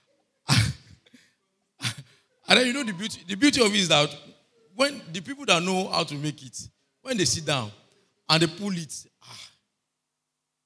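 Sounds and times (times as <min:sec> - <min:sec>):
loud breathy sneeze: 0:00.5 - 0:02.3
speech: 0:02.5 - 0:09.5.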